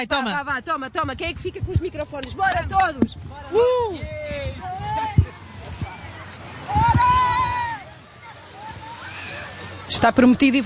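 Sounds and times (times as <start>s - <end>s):
speech: 0.0s - 4.8s, 10.0s - 10.6s
group shouting and yelling excitedly outdoors: 2.4s - 9.8s
people jumping or diving into the sea: 5.3s - 10.6s.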